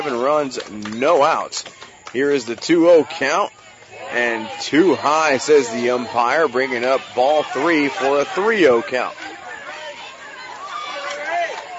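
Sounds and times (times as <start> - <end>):
speech: 0.0 - 9.3
baseball crowd yelling and cheering: 0.0 - 11.7
raised shouts: 3.2 - 11.7.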